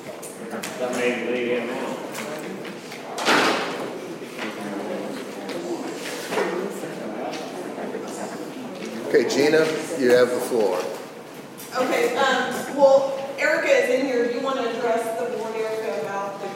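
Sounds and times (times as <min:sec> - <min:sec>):
several people murmuring and talking in a room: 0:00.0 - 0:16.5
speech: 0:00.5 - 0:02.0, 0:09.1 - 0:11.0, 0:11.8 - 0:15.7
door shutting with a solid thud: 0:03.2 - 0:04.0.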